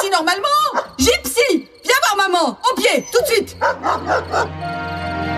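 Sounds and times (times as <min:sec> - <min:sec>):
speech: 0:00.2 - 0:01.6, 0:02.3 - 0:05.2
dog barking: 0:00.3 - 0:01.0, 0:03.2 - 0:04.5
dog whining: 0:02.8 - 0:04.5.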